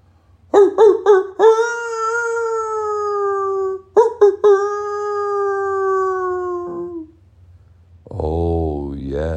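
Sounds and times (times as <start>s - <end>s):
wolf howling with sharp yips: 0.6s - 7.2s.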